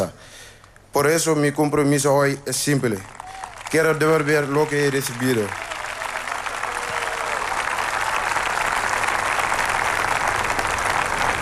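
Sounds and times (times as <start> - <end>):
speech: 1.0 - 5.7
applause from a large audience: 2.9 - 11.4.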